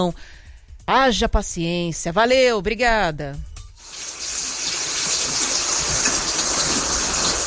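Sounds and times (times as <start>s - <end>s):
speech: 0.0s - 3.5s
steady rain pouring: 3.8s - 7.4s.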